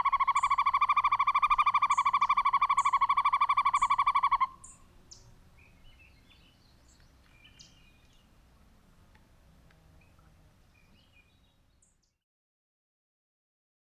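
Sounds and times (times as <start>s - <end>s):
high whistled bird notes: 0.0s - 4.8s
male northern hawk-owl hooting trill: 0.0s - 4.8s.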